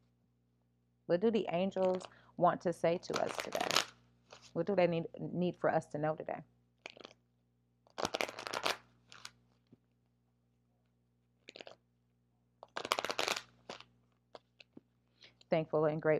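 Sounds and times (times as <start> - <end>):
speech: 1.1 - 3.9, 4.5 - 6.6, 15.5 - 16.1
deck of cards being riffle shuffled: 3.1 - 4.5, 7.9 - 9.7, 12.6 - 14.8.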